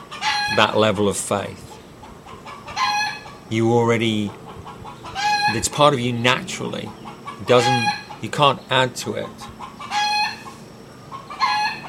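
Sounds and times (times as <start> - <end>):
speech: 0.5 - 1.7, 3.5 - 4.4, 5.5 - 9.5
rooster crowing: 2.5 - 3.4, 4.7 - 5.8, 6.7 - 8.2, 9.5 - 11.8.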